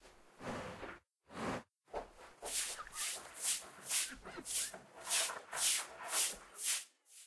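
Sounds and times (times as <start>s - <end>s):
office cleaning: 0.3s - 7.2s.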